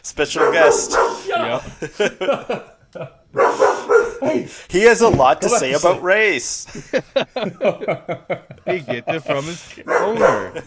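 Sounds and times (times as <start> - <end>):
speech: 0.1 - 3.6, 4.2 - 10.6
dog barking sharply: 0.3 - 1.5, 3.4 - 4.5, 9.8 - 10.6
laughter: 0.9 - 3.3, 5.4 - 10.6.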